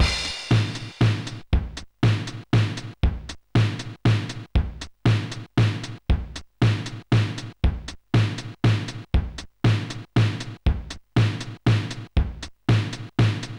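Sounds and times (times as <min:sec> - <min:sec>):
drum kit playing a waltz: 0:00.0 - 0:13.5.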